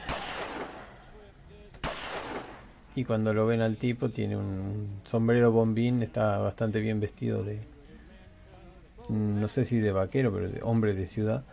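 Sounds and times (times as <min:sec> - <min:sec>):
distant gunshots with echo: 0:00.0 - 0:01.0, 0:01.8 - 0:02.7
speech: 0:03.0 - 0:07.7, 0:09.1 - 0:11.5.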